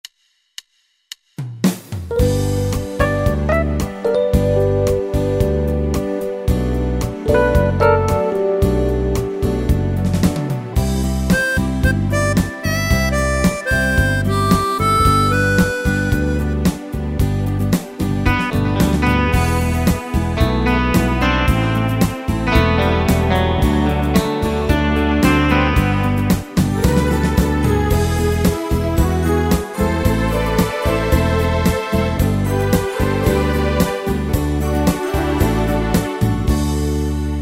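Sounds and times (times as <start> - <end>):
Yamaha PSR-3000 keyboard 8 beat pop and rock style: 1.6 - 37.3.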